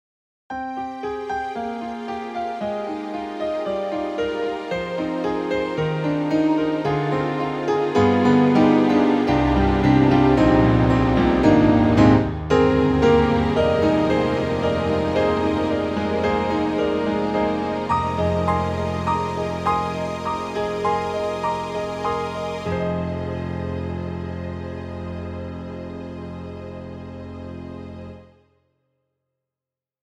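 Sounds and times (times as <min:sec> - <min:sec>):
synthesizer piano and strings: 0:00.5 - 0:28.2.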